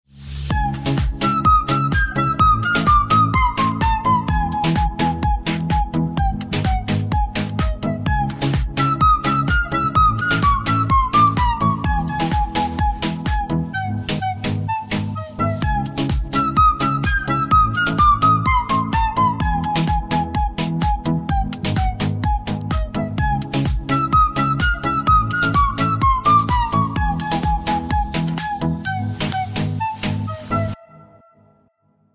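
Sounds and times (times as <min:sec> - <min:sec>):
flute: 0:00.2 - 0:31.7.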